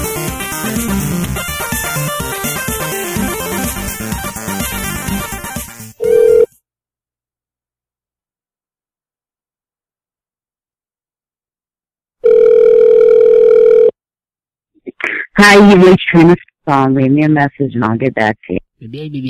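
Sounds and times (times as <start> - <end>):
music: 0.0 - 6.0
telephone ringing tone on an outgoing call: 6.0 - 6.6, 12.2 - 14.0
speech: 15.4 - 19.2.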